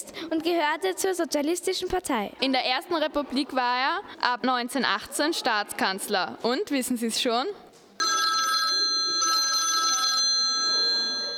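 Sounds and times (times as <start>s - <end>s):
speech: 0.3s - 7.6s
electronic telephone ringing: 8.0s - 11.3s.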